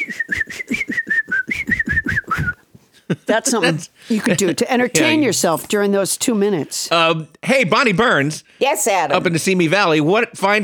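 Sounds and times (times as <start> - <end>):
thin breathy whistle through the nose: 0.0 - 2.6
speech: 3.3 - 10.6.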